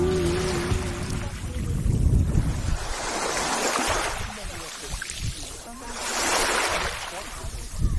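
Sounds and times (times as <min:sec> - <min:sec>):
ocean waves rolling onto the beach at Travemünde in the morning: 0:00.1 - 0:07.8.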